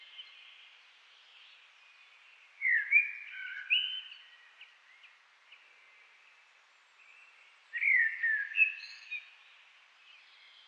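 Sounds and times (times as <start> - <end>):
common blackbird Turdus merula singing: 2.6 - 4.4, 7.8 - 9.3.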